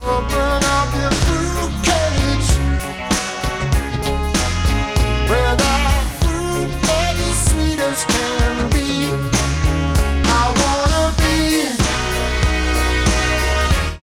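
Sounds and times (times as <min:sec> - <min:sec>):
pitch-shifted audio: 0:00.0 - 0:14.0.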